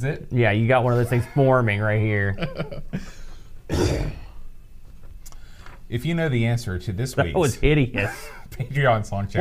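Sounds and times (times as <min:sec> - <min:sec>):
speech: 0:00.0 - 0:04.2, 0:05.9 - 0:09.3
harsh cough and throat clearing: 0:03.7 - 0:04.4.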